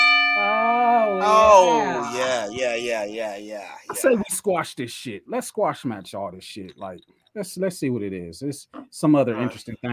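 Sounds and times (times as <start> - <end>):
bell ringing with sustained metallic tones: 0.0 - 2.6
speech: 1.6 - 9.9.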